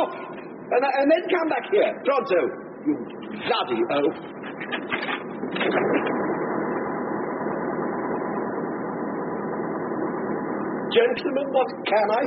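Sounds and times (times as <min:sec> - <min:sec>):
speech: 0:00.0 - 0:06.0, 0:10.9 - 0:12.2
compressor engine running with loud mechanical drone: 0:00.0 - 0:12.2.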